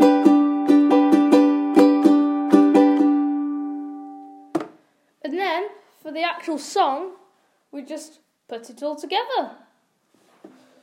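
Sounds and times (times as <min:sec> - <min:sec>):
G major chord strummed on a ukulele: 0:00.0 - 0:04.6
speech: 0:06.1 - 0:09.6.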